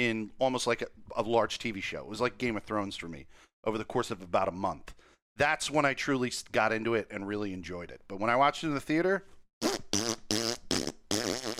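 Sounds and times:
speech: 0.0 - 10.1
buzzing wobbly fart noises made with the mouth: 9.6 - 11.5.

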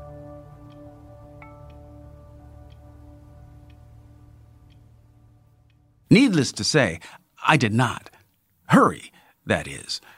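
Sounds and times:
steady low hum: 0.0 - 7.1
faint sharp clock ticks: 0.0 - 10.1
speech: 6.1 - 8.1, 8.7 - 10.1.

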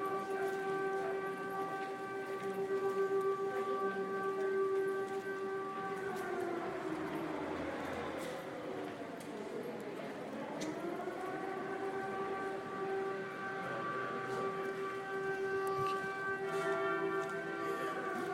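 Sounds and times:
public warning siren sounding during a test: 0.0 - 18.3.

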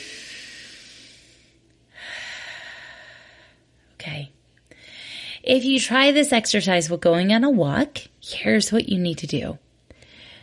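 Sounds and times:
cleansing inhale and exhale: 0.0 - 3.8, 4.6 - 5.5, 9.9 - 10.4
speech: 5.4 - 9.6.

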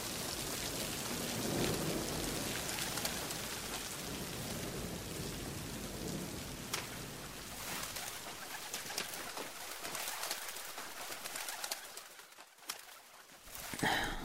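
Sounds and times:
heavy rain splashing during a storm: 0.0 - 14.2
thunder rumbling: 0.7 - 9.9.

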